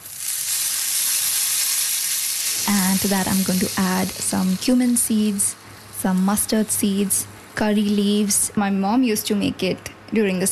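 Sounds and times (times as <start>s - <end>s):
tablespoon of ghee heating and sizzling in a pan: 0.0s - 8.4s
speech: 3.0s - 10.4s.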